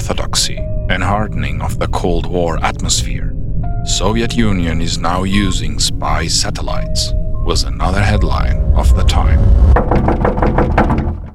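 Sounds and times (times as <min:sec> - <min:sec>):
speech: 0:00.1 - 0:10.8
rapid insistent knocking on a door: 0:09.7 - 0:11.3.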